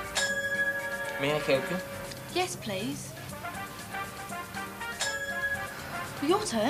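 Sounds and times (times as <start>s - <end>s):
reception desk bell ding: 0.2s - 2.1s, 5.0s - 6.0s
speech: 1.2s - 3.1s, 6.2s - 6.6s.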